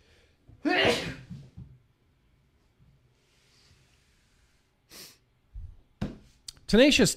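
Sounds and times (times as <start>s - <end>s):
sneeze: 0.7s - 1.3s
short sharp sniff: 3.3s - 5.2s
speech: 6.7s - 7.1s.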